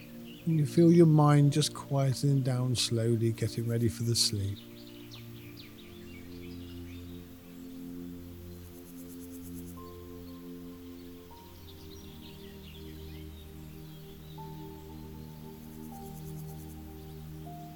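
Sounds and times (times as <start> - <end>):
birds chirping: 0.0 - 17.7
speech: 0.5 - 4.7
steady low humming drone: 4.4 - 17.7.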